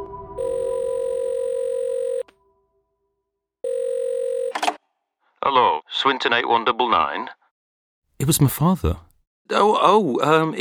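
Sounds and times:
telephone line electronic ring tone in the earpiece: 0.4 - 2.3, 3.6 - 4.8
speech: 6.0 - 7.4, 8.2 - 10.5.

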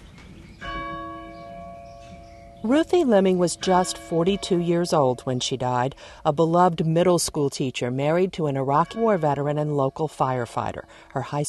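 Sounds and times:
single church bell ringing, pulled by rope: 0.6 - 5.8, 8.6 - 11.4
speech: 2.6 - 11.4.

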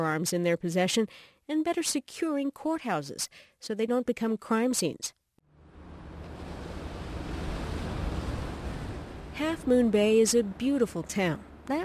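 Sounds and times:
speech: 0.0 - 5.2, 9.4 - 11.8
faint wind: 5.5 - 11.8
ocean surf at the shore of Half Moon Bay: 5.6 - 11.6.

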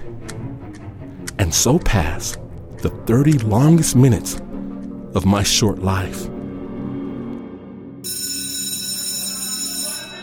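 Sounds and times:
speech: 1.4 - 4.4, 5.2 - 6.4
electric school bell ringing: 8.0 - 10.2.

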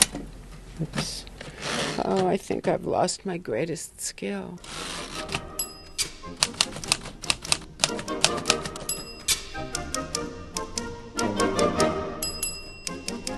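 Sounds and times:
speech: 0.8 - 1.3, 2.0 - 5.0
lively orchestral backing music: 4.7 - 13.3
vintage typewriter keys clacking: 5.0 - 9.5
bright typewriter bell dings: 5.6 - 6.2, 8.8 - 9.6, 12.2 - 13.2.

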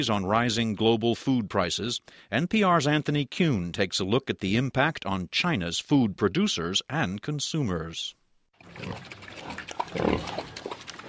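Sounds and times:
speech: 0.0 - 10.6
pigs in a farmer's pen near Beijing grunting and snorting at feeding time: 8.6 - 11.0.

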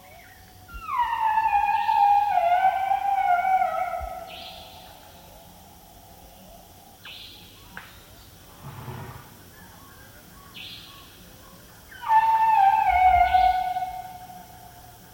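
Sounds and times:
Asian elephant squealing in Nepal: 0.8 - 5.0, 12.0 - 14.6
faint scrapes: 8.5 - 9.4.

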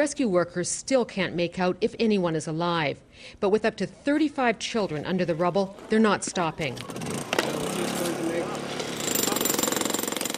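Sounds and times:
speech: 0.0 - 7.2
jackhammers pounding holes into a concrete roof: 4.9 - 10.3.

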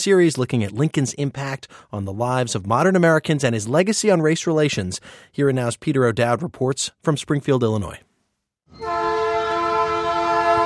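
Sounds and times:
speech: 0.0 - 8.1
freight train rolling past in Springfield, Illinois: 8.8 - 10.6.

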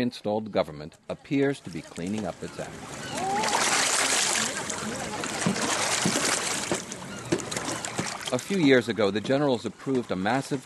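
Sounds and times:
speech: 0.0 - 3.1, 8.3 - 10.6
river water splashing and sloshing from washing clothes: 1.4 - 10.6
wet clothes beaten in river water: 3.1 - 8.3.

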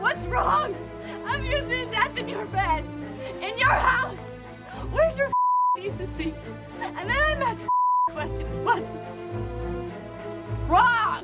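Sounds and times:
agitated emotional film dialogue: 0.0 - 4.3, 4.9 - 9.0
speech: 4.8 - 10.0, 10.7 - 11.2
censor bleep over film dialogue: 5.4 - 5.8, 7.7 - 8.2.

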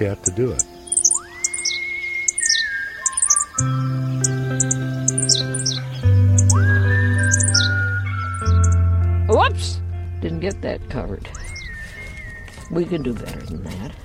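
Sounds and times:
speech: 0.0 - 0.7, 10.4 - 11.4, 12.7 - 14.0
Henslow's sparrow high-pitched chirps: 0.0 - 14.0
low droning hum with sustained tones and rising sweeps: 5.8 - 11.7.

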